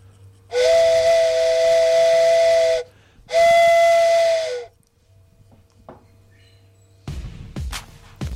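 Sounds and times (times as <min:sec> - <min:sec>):
mouth imitation of a train whistle: 0:00.5 - 0:04.7.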